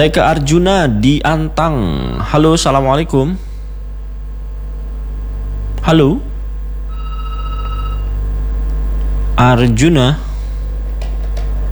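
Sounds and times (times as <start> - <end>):
speech: 0.0 - 3.5, 5.8 - 6.3, 9.4 - 10.3
constant low hum: 0.0 - 11.7
phone ringing with an incoming WhatsApp call: 6.9 - 8.2.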